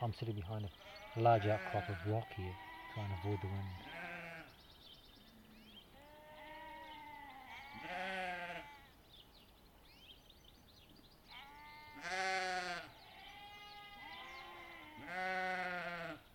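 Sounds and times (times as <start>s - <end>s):
speech: 0.0s - 4.0s
steady outdoor hiss: 0.0s - 16.3s
sheep bleating: 0.7s - 4.6s, 5.9s - 8.9s, 11.3s - 16.3s.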